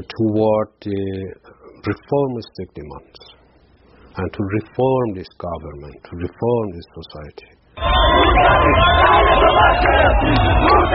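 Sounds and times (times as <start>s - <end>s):
speech: 0.0s - 3.4s, 4.2s - 10.9s
large crowd chanting political slogans in unison: 7.8s - 10.9s.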